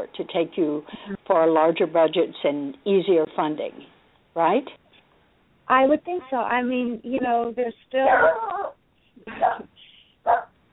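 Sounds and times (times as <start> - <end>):
speech: 0.0 - 4.8, 5.7 - 10.4
dog barking: 8.1 - 8.8, 9.4 - 10.6.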